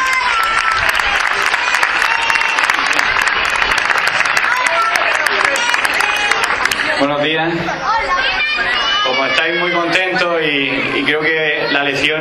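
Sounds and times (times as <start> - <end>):
applause from a sizable audience welcoming a guest: 0.0 - 7.1
speech: 7.0 - 8.7, 9.4 - 12.2.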